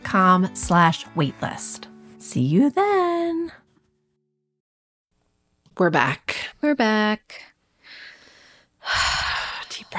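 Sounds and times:
speech: 0:00.1 - 0:03.6, 0:05.8 - 0:07.5, 0:08.8 - 0:09.2
person taking a deep breath: 0:07.8 - 0:09.4.

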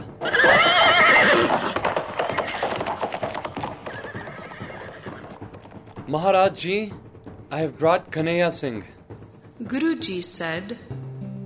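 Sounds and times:
horse whinnying: 0:00.0 - 0:06.0
horse hooves clip-clopping as a rider sets off: 0:00.0 - 0:09.6
speech: 0:06.1 - 0:09.0, 0:09.6 - 0:11.0.

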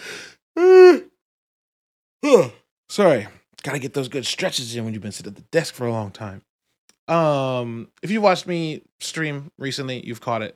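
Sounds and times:
person yawning with a voiced groan: 0:00.0 - 0:01.2, 0:02.2 - 0:02.7
speech: 0:02.3 - 0:06.5, 0:07.1 - 0:10.5.

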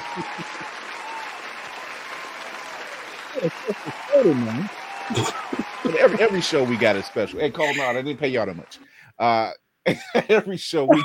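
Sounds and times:
laughter: 0:00.0 - 0:01.0, 0:03.4 - 0:08.4, 0:09.2 - 0:11.0
faint vocal cheers and whoops: 0:00.0 - 0:08.0
crowd applause: 0:00.0 - 0:08.8
speech: 0:00.2 - 0:00.8, 0:03.4 - 0:11.0.

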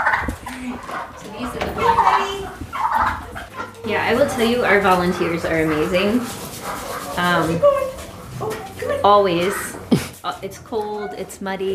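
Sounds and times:
barnyard noise: 0:00.0 - 0:11.7
several ducks quacking as they come in: 0:00.0 - 0:11.7
speech: 0:04.0 - 0:06.5, 0:07.2 - 0:11.7.

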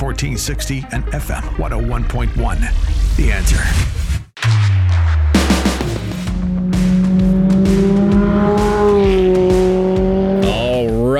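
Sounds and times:
speech: 0:00.0 - 0:04.1
race car engine revving on Pikes Peak: 0:05.0 - 0:11.1.

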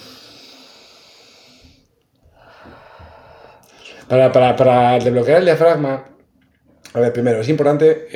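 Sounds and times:
deep breathing through the nose and mouth: 0:00.0 - 0:04.1
speech: 0:04.1 - 0:06.1, 0:06.9 - 0:08.1.

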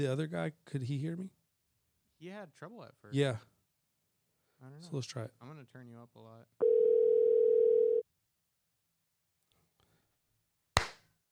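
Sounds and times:
speech: 0:00.0 - 0:01.4, 0:02.2 - 0:03.5, 0:04.6 - 0:06.7
telephone dial tone while a call is placed back: 0:06.6 - 0:08.0.

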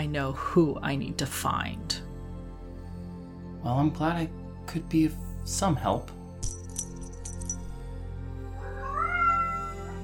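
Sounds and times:
speech: 0:00.0 - 0:02.0, 0:03.6 - 0:06.2
cat meowing in a drawn-out rising cry: 0:08.6 - 0:10.0.

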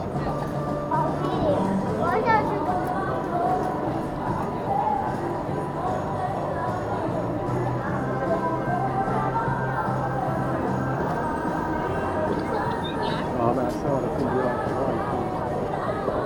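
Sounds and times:
crowd of Christmas shoppers chattering on a busy shopping street: 0:00.0 - 0:16.2.

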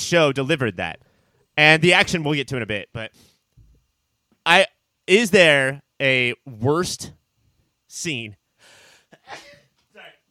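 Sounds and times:
speech: 0:00.0 - 0:03.3, 0:04.4 - 0:07.2, 0:07.9 - 0:08.4, 0:09.3 - 0:09.5
person sneezing with a snort-like exhale: 0:09.1 - 0:10.1.

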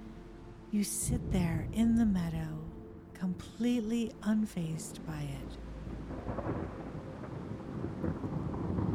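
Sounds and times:
rain: 0:00.1 - 0:08.9
speech: 0:00.7 - 0:06.5
deep rolling thunder: 0:01.1 - 0:02.8, 0:05.8 - 0:08.9.

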